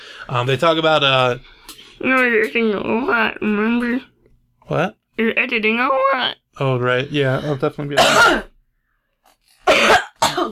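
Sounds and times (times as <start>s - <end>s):
speech: 0.3s - 4.1s, 4.7s - 8.5s
person coughing: 7.9s - 8.6s, 9.6s - 10.5s.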